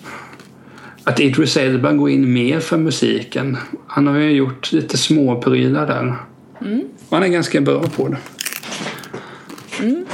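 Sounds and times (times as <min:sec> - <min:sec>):
person chewing food: 0:00.0 - 0:00.9, 0:07.8 - 0:10.1
speech: 0:01.1 - 0:08.5, 0:09.8 - 0:10.1.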